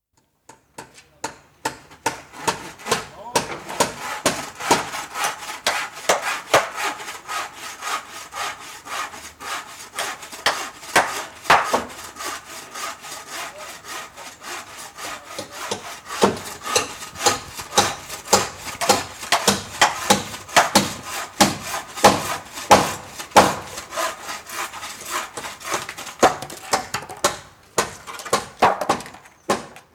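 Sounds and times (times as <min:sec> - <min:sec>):
hammer on a construction site: 0:00.5 - 0:06.8, 0:10.4 - 0:11.9, 0:15.4 - 0:23.7, 0:25.4 - 0:29.8
saw on a construction site: 0:01.6 - 0:29.8.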